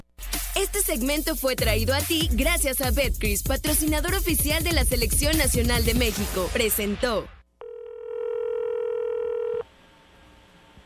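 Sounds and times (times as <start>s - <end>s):
speech: 0.6s - 7.4s
telephone call tone beep: 7.6s - 9.6s.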